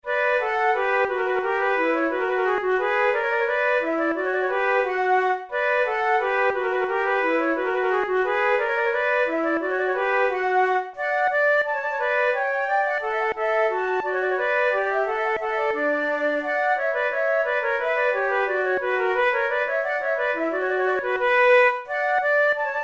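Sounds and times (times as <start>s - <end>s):
two flutes playing a gavotte: 0.0s - 22.8s.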